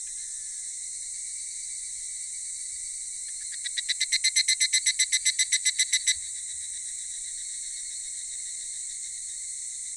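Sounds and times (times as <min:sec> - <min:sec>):
evening cicada call: 0:03.2 - 0:08.8.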